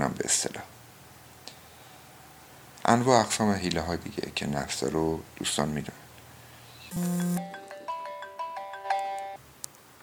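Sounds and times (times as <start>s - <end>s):
speech: 0.0s - 0.8s, 2.8s - 6.0s, 6.9s - 7.6s
mobile phone ringtone of bright electronic tones: 6.9s - 7.9s.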